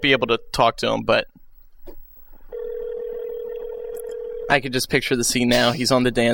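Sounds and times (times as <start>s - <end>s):
speech: 0.0s - 1.4s, 4.5s - 6.3s
steady mid-pitched telephone line tone: 1.4s - 4.6s.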